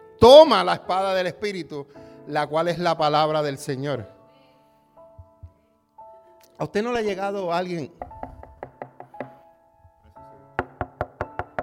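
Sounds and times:
speech: 0.2 - 4.2, 6.6 - 8.1
rapid knocking on a door: 8.0 - 9.4, 10.6 - 11.6.

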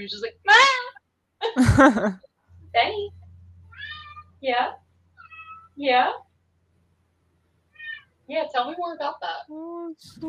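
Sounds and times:
speech: 0.0 - 0.4, 1.6 - 3.2, 4.4 - 4.8, 5.8 - 6.2, 8.3 - 10.2
laughter: 1.6 - 2.2
cat meowing: 3.7 - 4.4, 5.2 - 5.8, 7.7 - 8.1.

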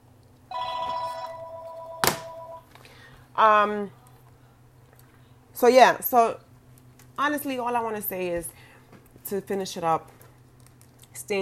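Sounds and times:
mobile phone ringing: 0.5 - 2.7
speech: 3.4 - 4.0, 5.6 - 6.5, 7.2 - 8.6, 9.2 - 10.1.

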